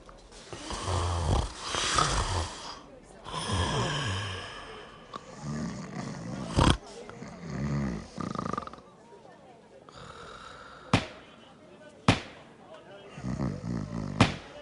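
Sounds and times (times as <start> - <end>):
loud snoring: 0.5 - 8.8, 13.1 - 14.4.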